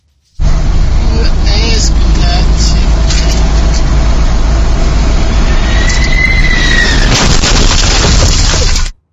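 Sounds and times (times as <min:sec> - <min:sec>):
delivery truck engine roar from inside the cab: 0:00.3 - 0:09.0
low jet whine: 0:00.4 - 0:07.2.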